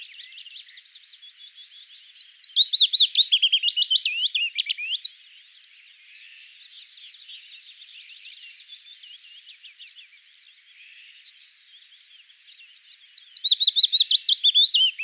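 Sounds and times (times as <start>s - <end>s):
quiet willow warbler chirps: 0.0s - 15.0s
willow warbler song: 0.0s - 15.0s.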